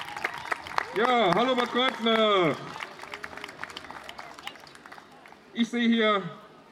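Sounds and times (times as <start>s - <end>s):
cheers and whoops: 0.0s - 3.3s
audience clapping: 0.0s - 5.4s
speech: 1.0s - 2.8s, 5.6s - 6.4s.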